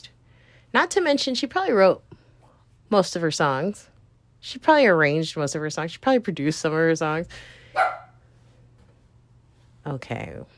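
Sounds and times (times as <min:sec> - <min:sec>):
speech: 0:00.8 - 0:02.1, 0:02.9 - 0:08.0, 0:09.9 - 0:10.5
dog giving a sharp bark: 0:07.7 - 0:08.2.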